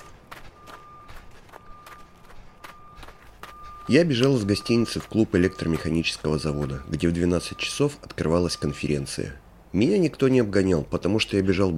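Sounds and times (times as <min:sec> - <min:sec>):
footsteps crunching on frozen snow in thick fog at fifty below: 0:00.0 - 0:07.5
speech: 0:03.9 - 0:11.7.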